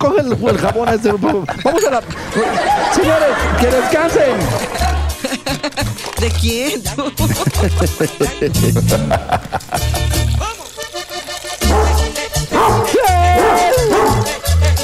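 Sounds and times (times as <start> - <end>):
speech: 0.0 - 5.0, 5.6 - 10.0
laughter: 0.0 - 10.8
steady rhythmic musical backing: 2.3 - 14.8
dog barking with yipping and whimpering: 11.6 - 14.4.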